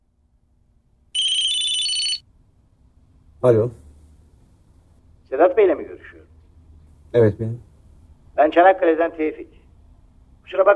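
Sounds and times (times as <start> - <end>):
faint low hum: 0.0 - 10.7
loud electronic phone ring with a high bright trill: 1.2 - 2.3
speech: 3.4 - 3.8, 7.1 - 7.7, 8.4 - 9.6, 10.5 - 10.7.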